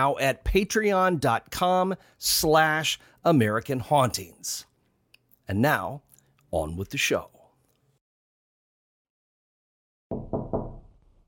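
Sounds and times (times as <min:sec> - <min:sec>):
speech: 0:00.0 - 0:04.7, 0:05.5 - 0:07.4
heavy knocks on wood: 0:10.1 - 0:10.9.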